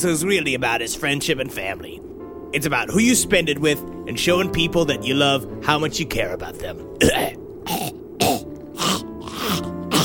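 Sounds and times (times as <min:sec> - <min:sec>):
speech: 0:00.0 - 0:08.0
throat clearing: 0:07.0 - 0:10.0.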